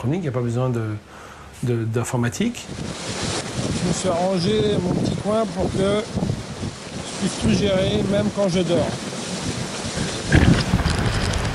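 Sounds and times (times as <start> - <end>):
speech: 0.0 - 6.3, 7.2 - 9.1
storm wind roaring at sea aboard a sailboat in a gale: 2.6 - 11.5.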